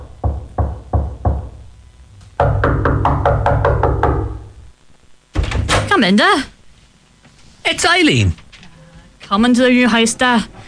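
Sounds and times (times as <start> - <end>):
knocking on a wooden house door: 0.0 - 1.6, 2.4 - 4.4
speech: 6.0 - 6.5, 7.7 - 8.4, 9.3 - 10.5.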